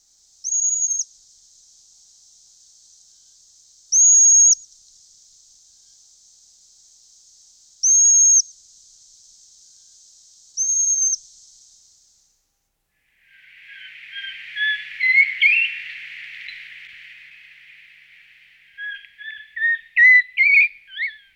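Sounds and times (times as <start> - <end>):
Eurasian pygmy owl calling: 0.4 - 1.0, 4.0 - 4.6, 7.8 - 8.4, 13.3 - 21.3.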